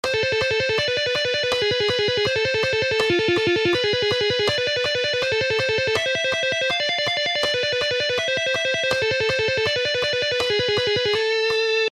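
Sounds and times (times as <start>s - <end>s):
tapping exercise: 0.0s - 11.7s.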